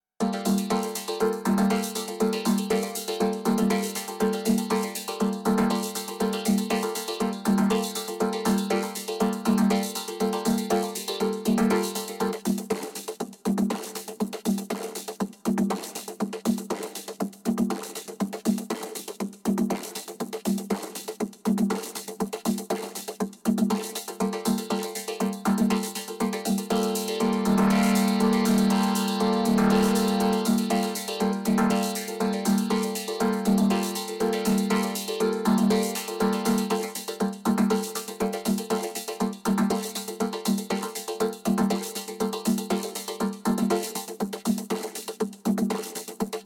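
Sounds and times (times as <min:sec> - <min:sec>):
vocoder drums: 0:00.2 - 0:46.4.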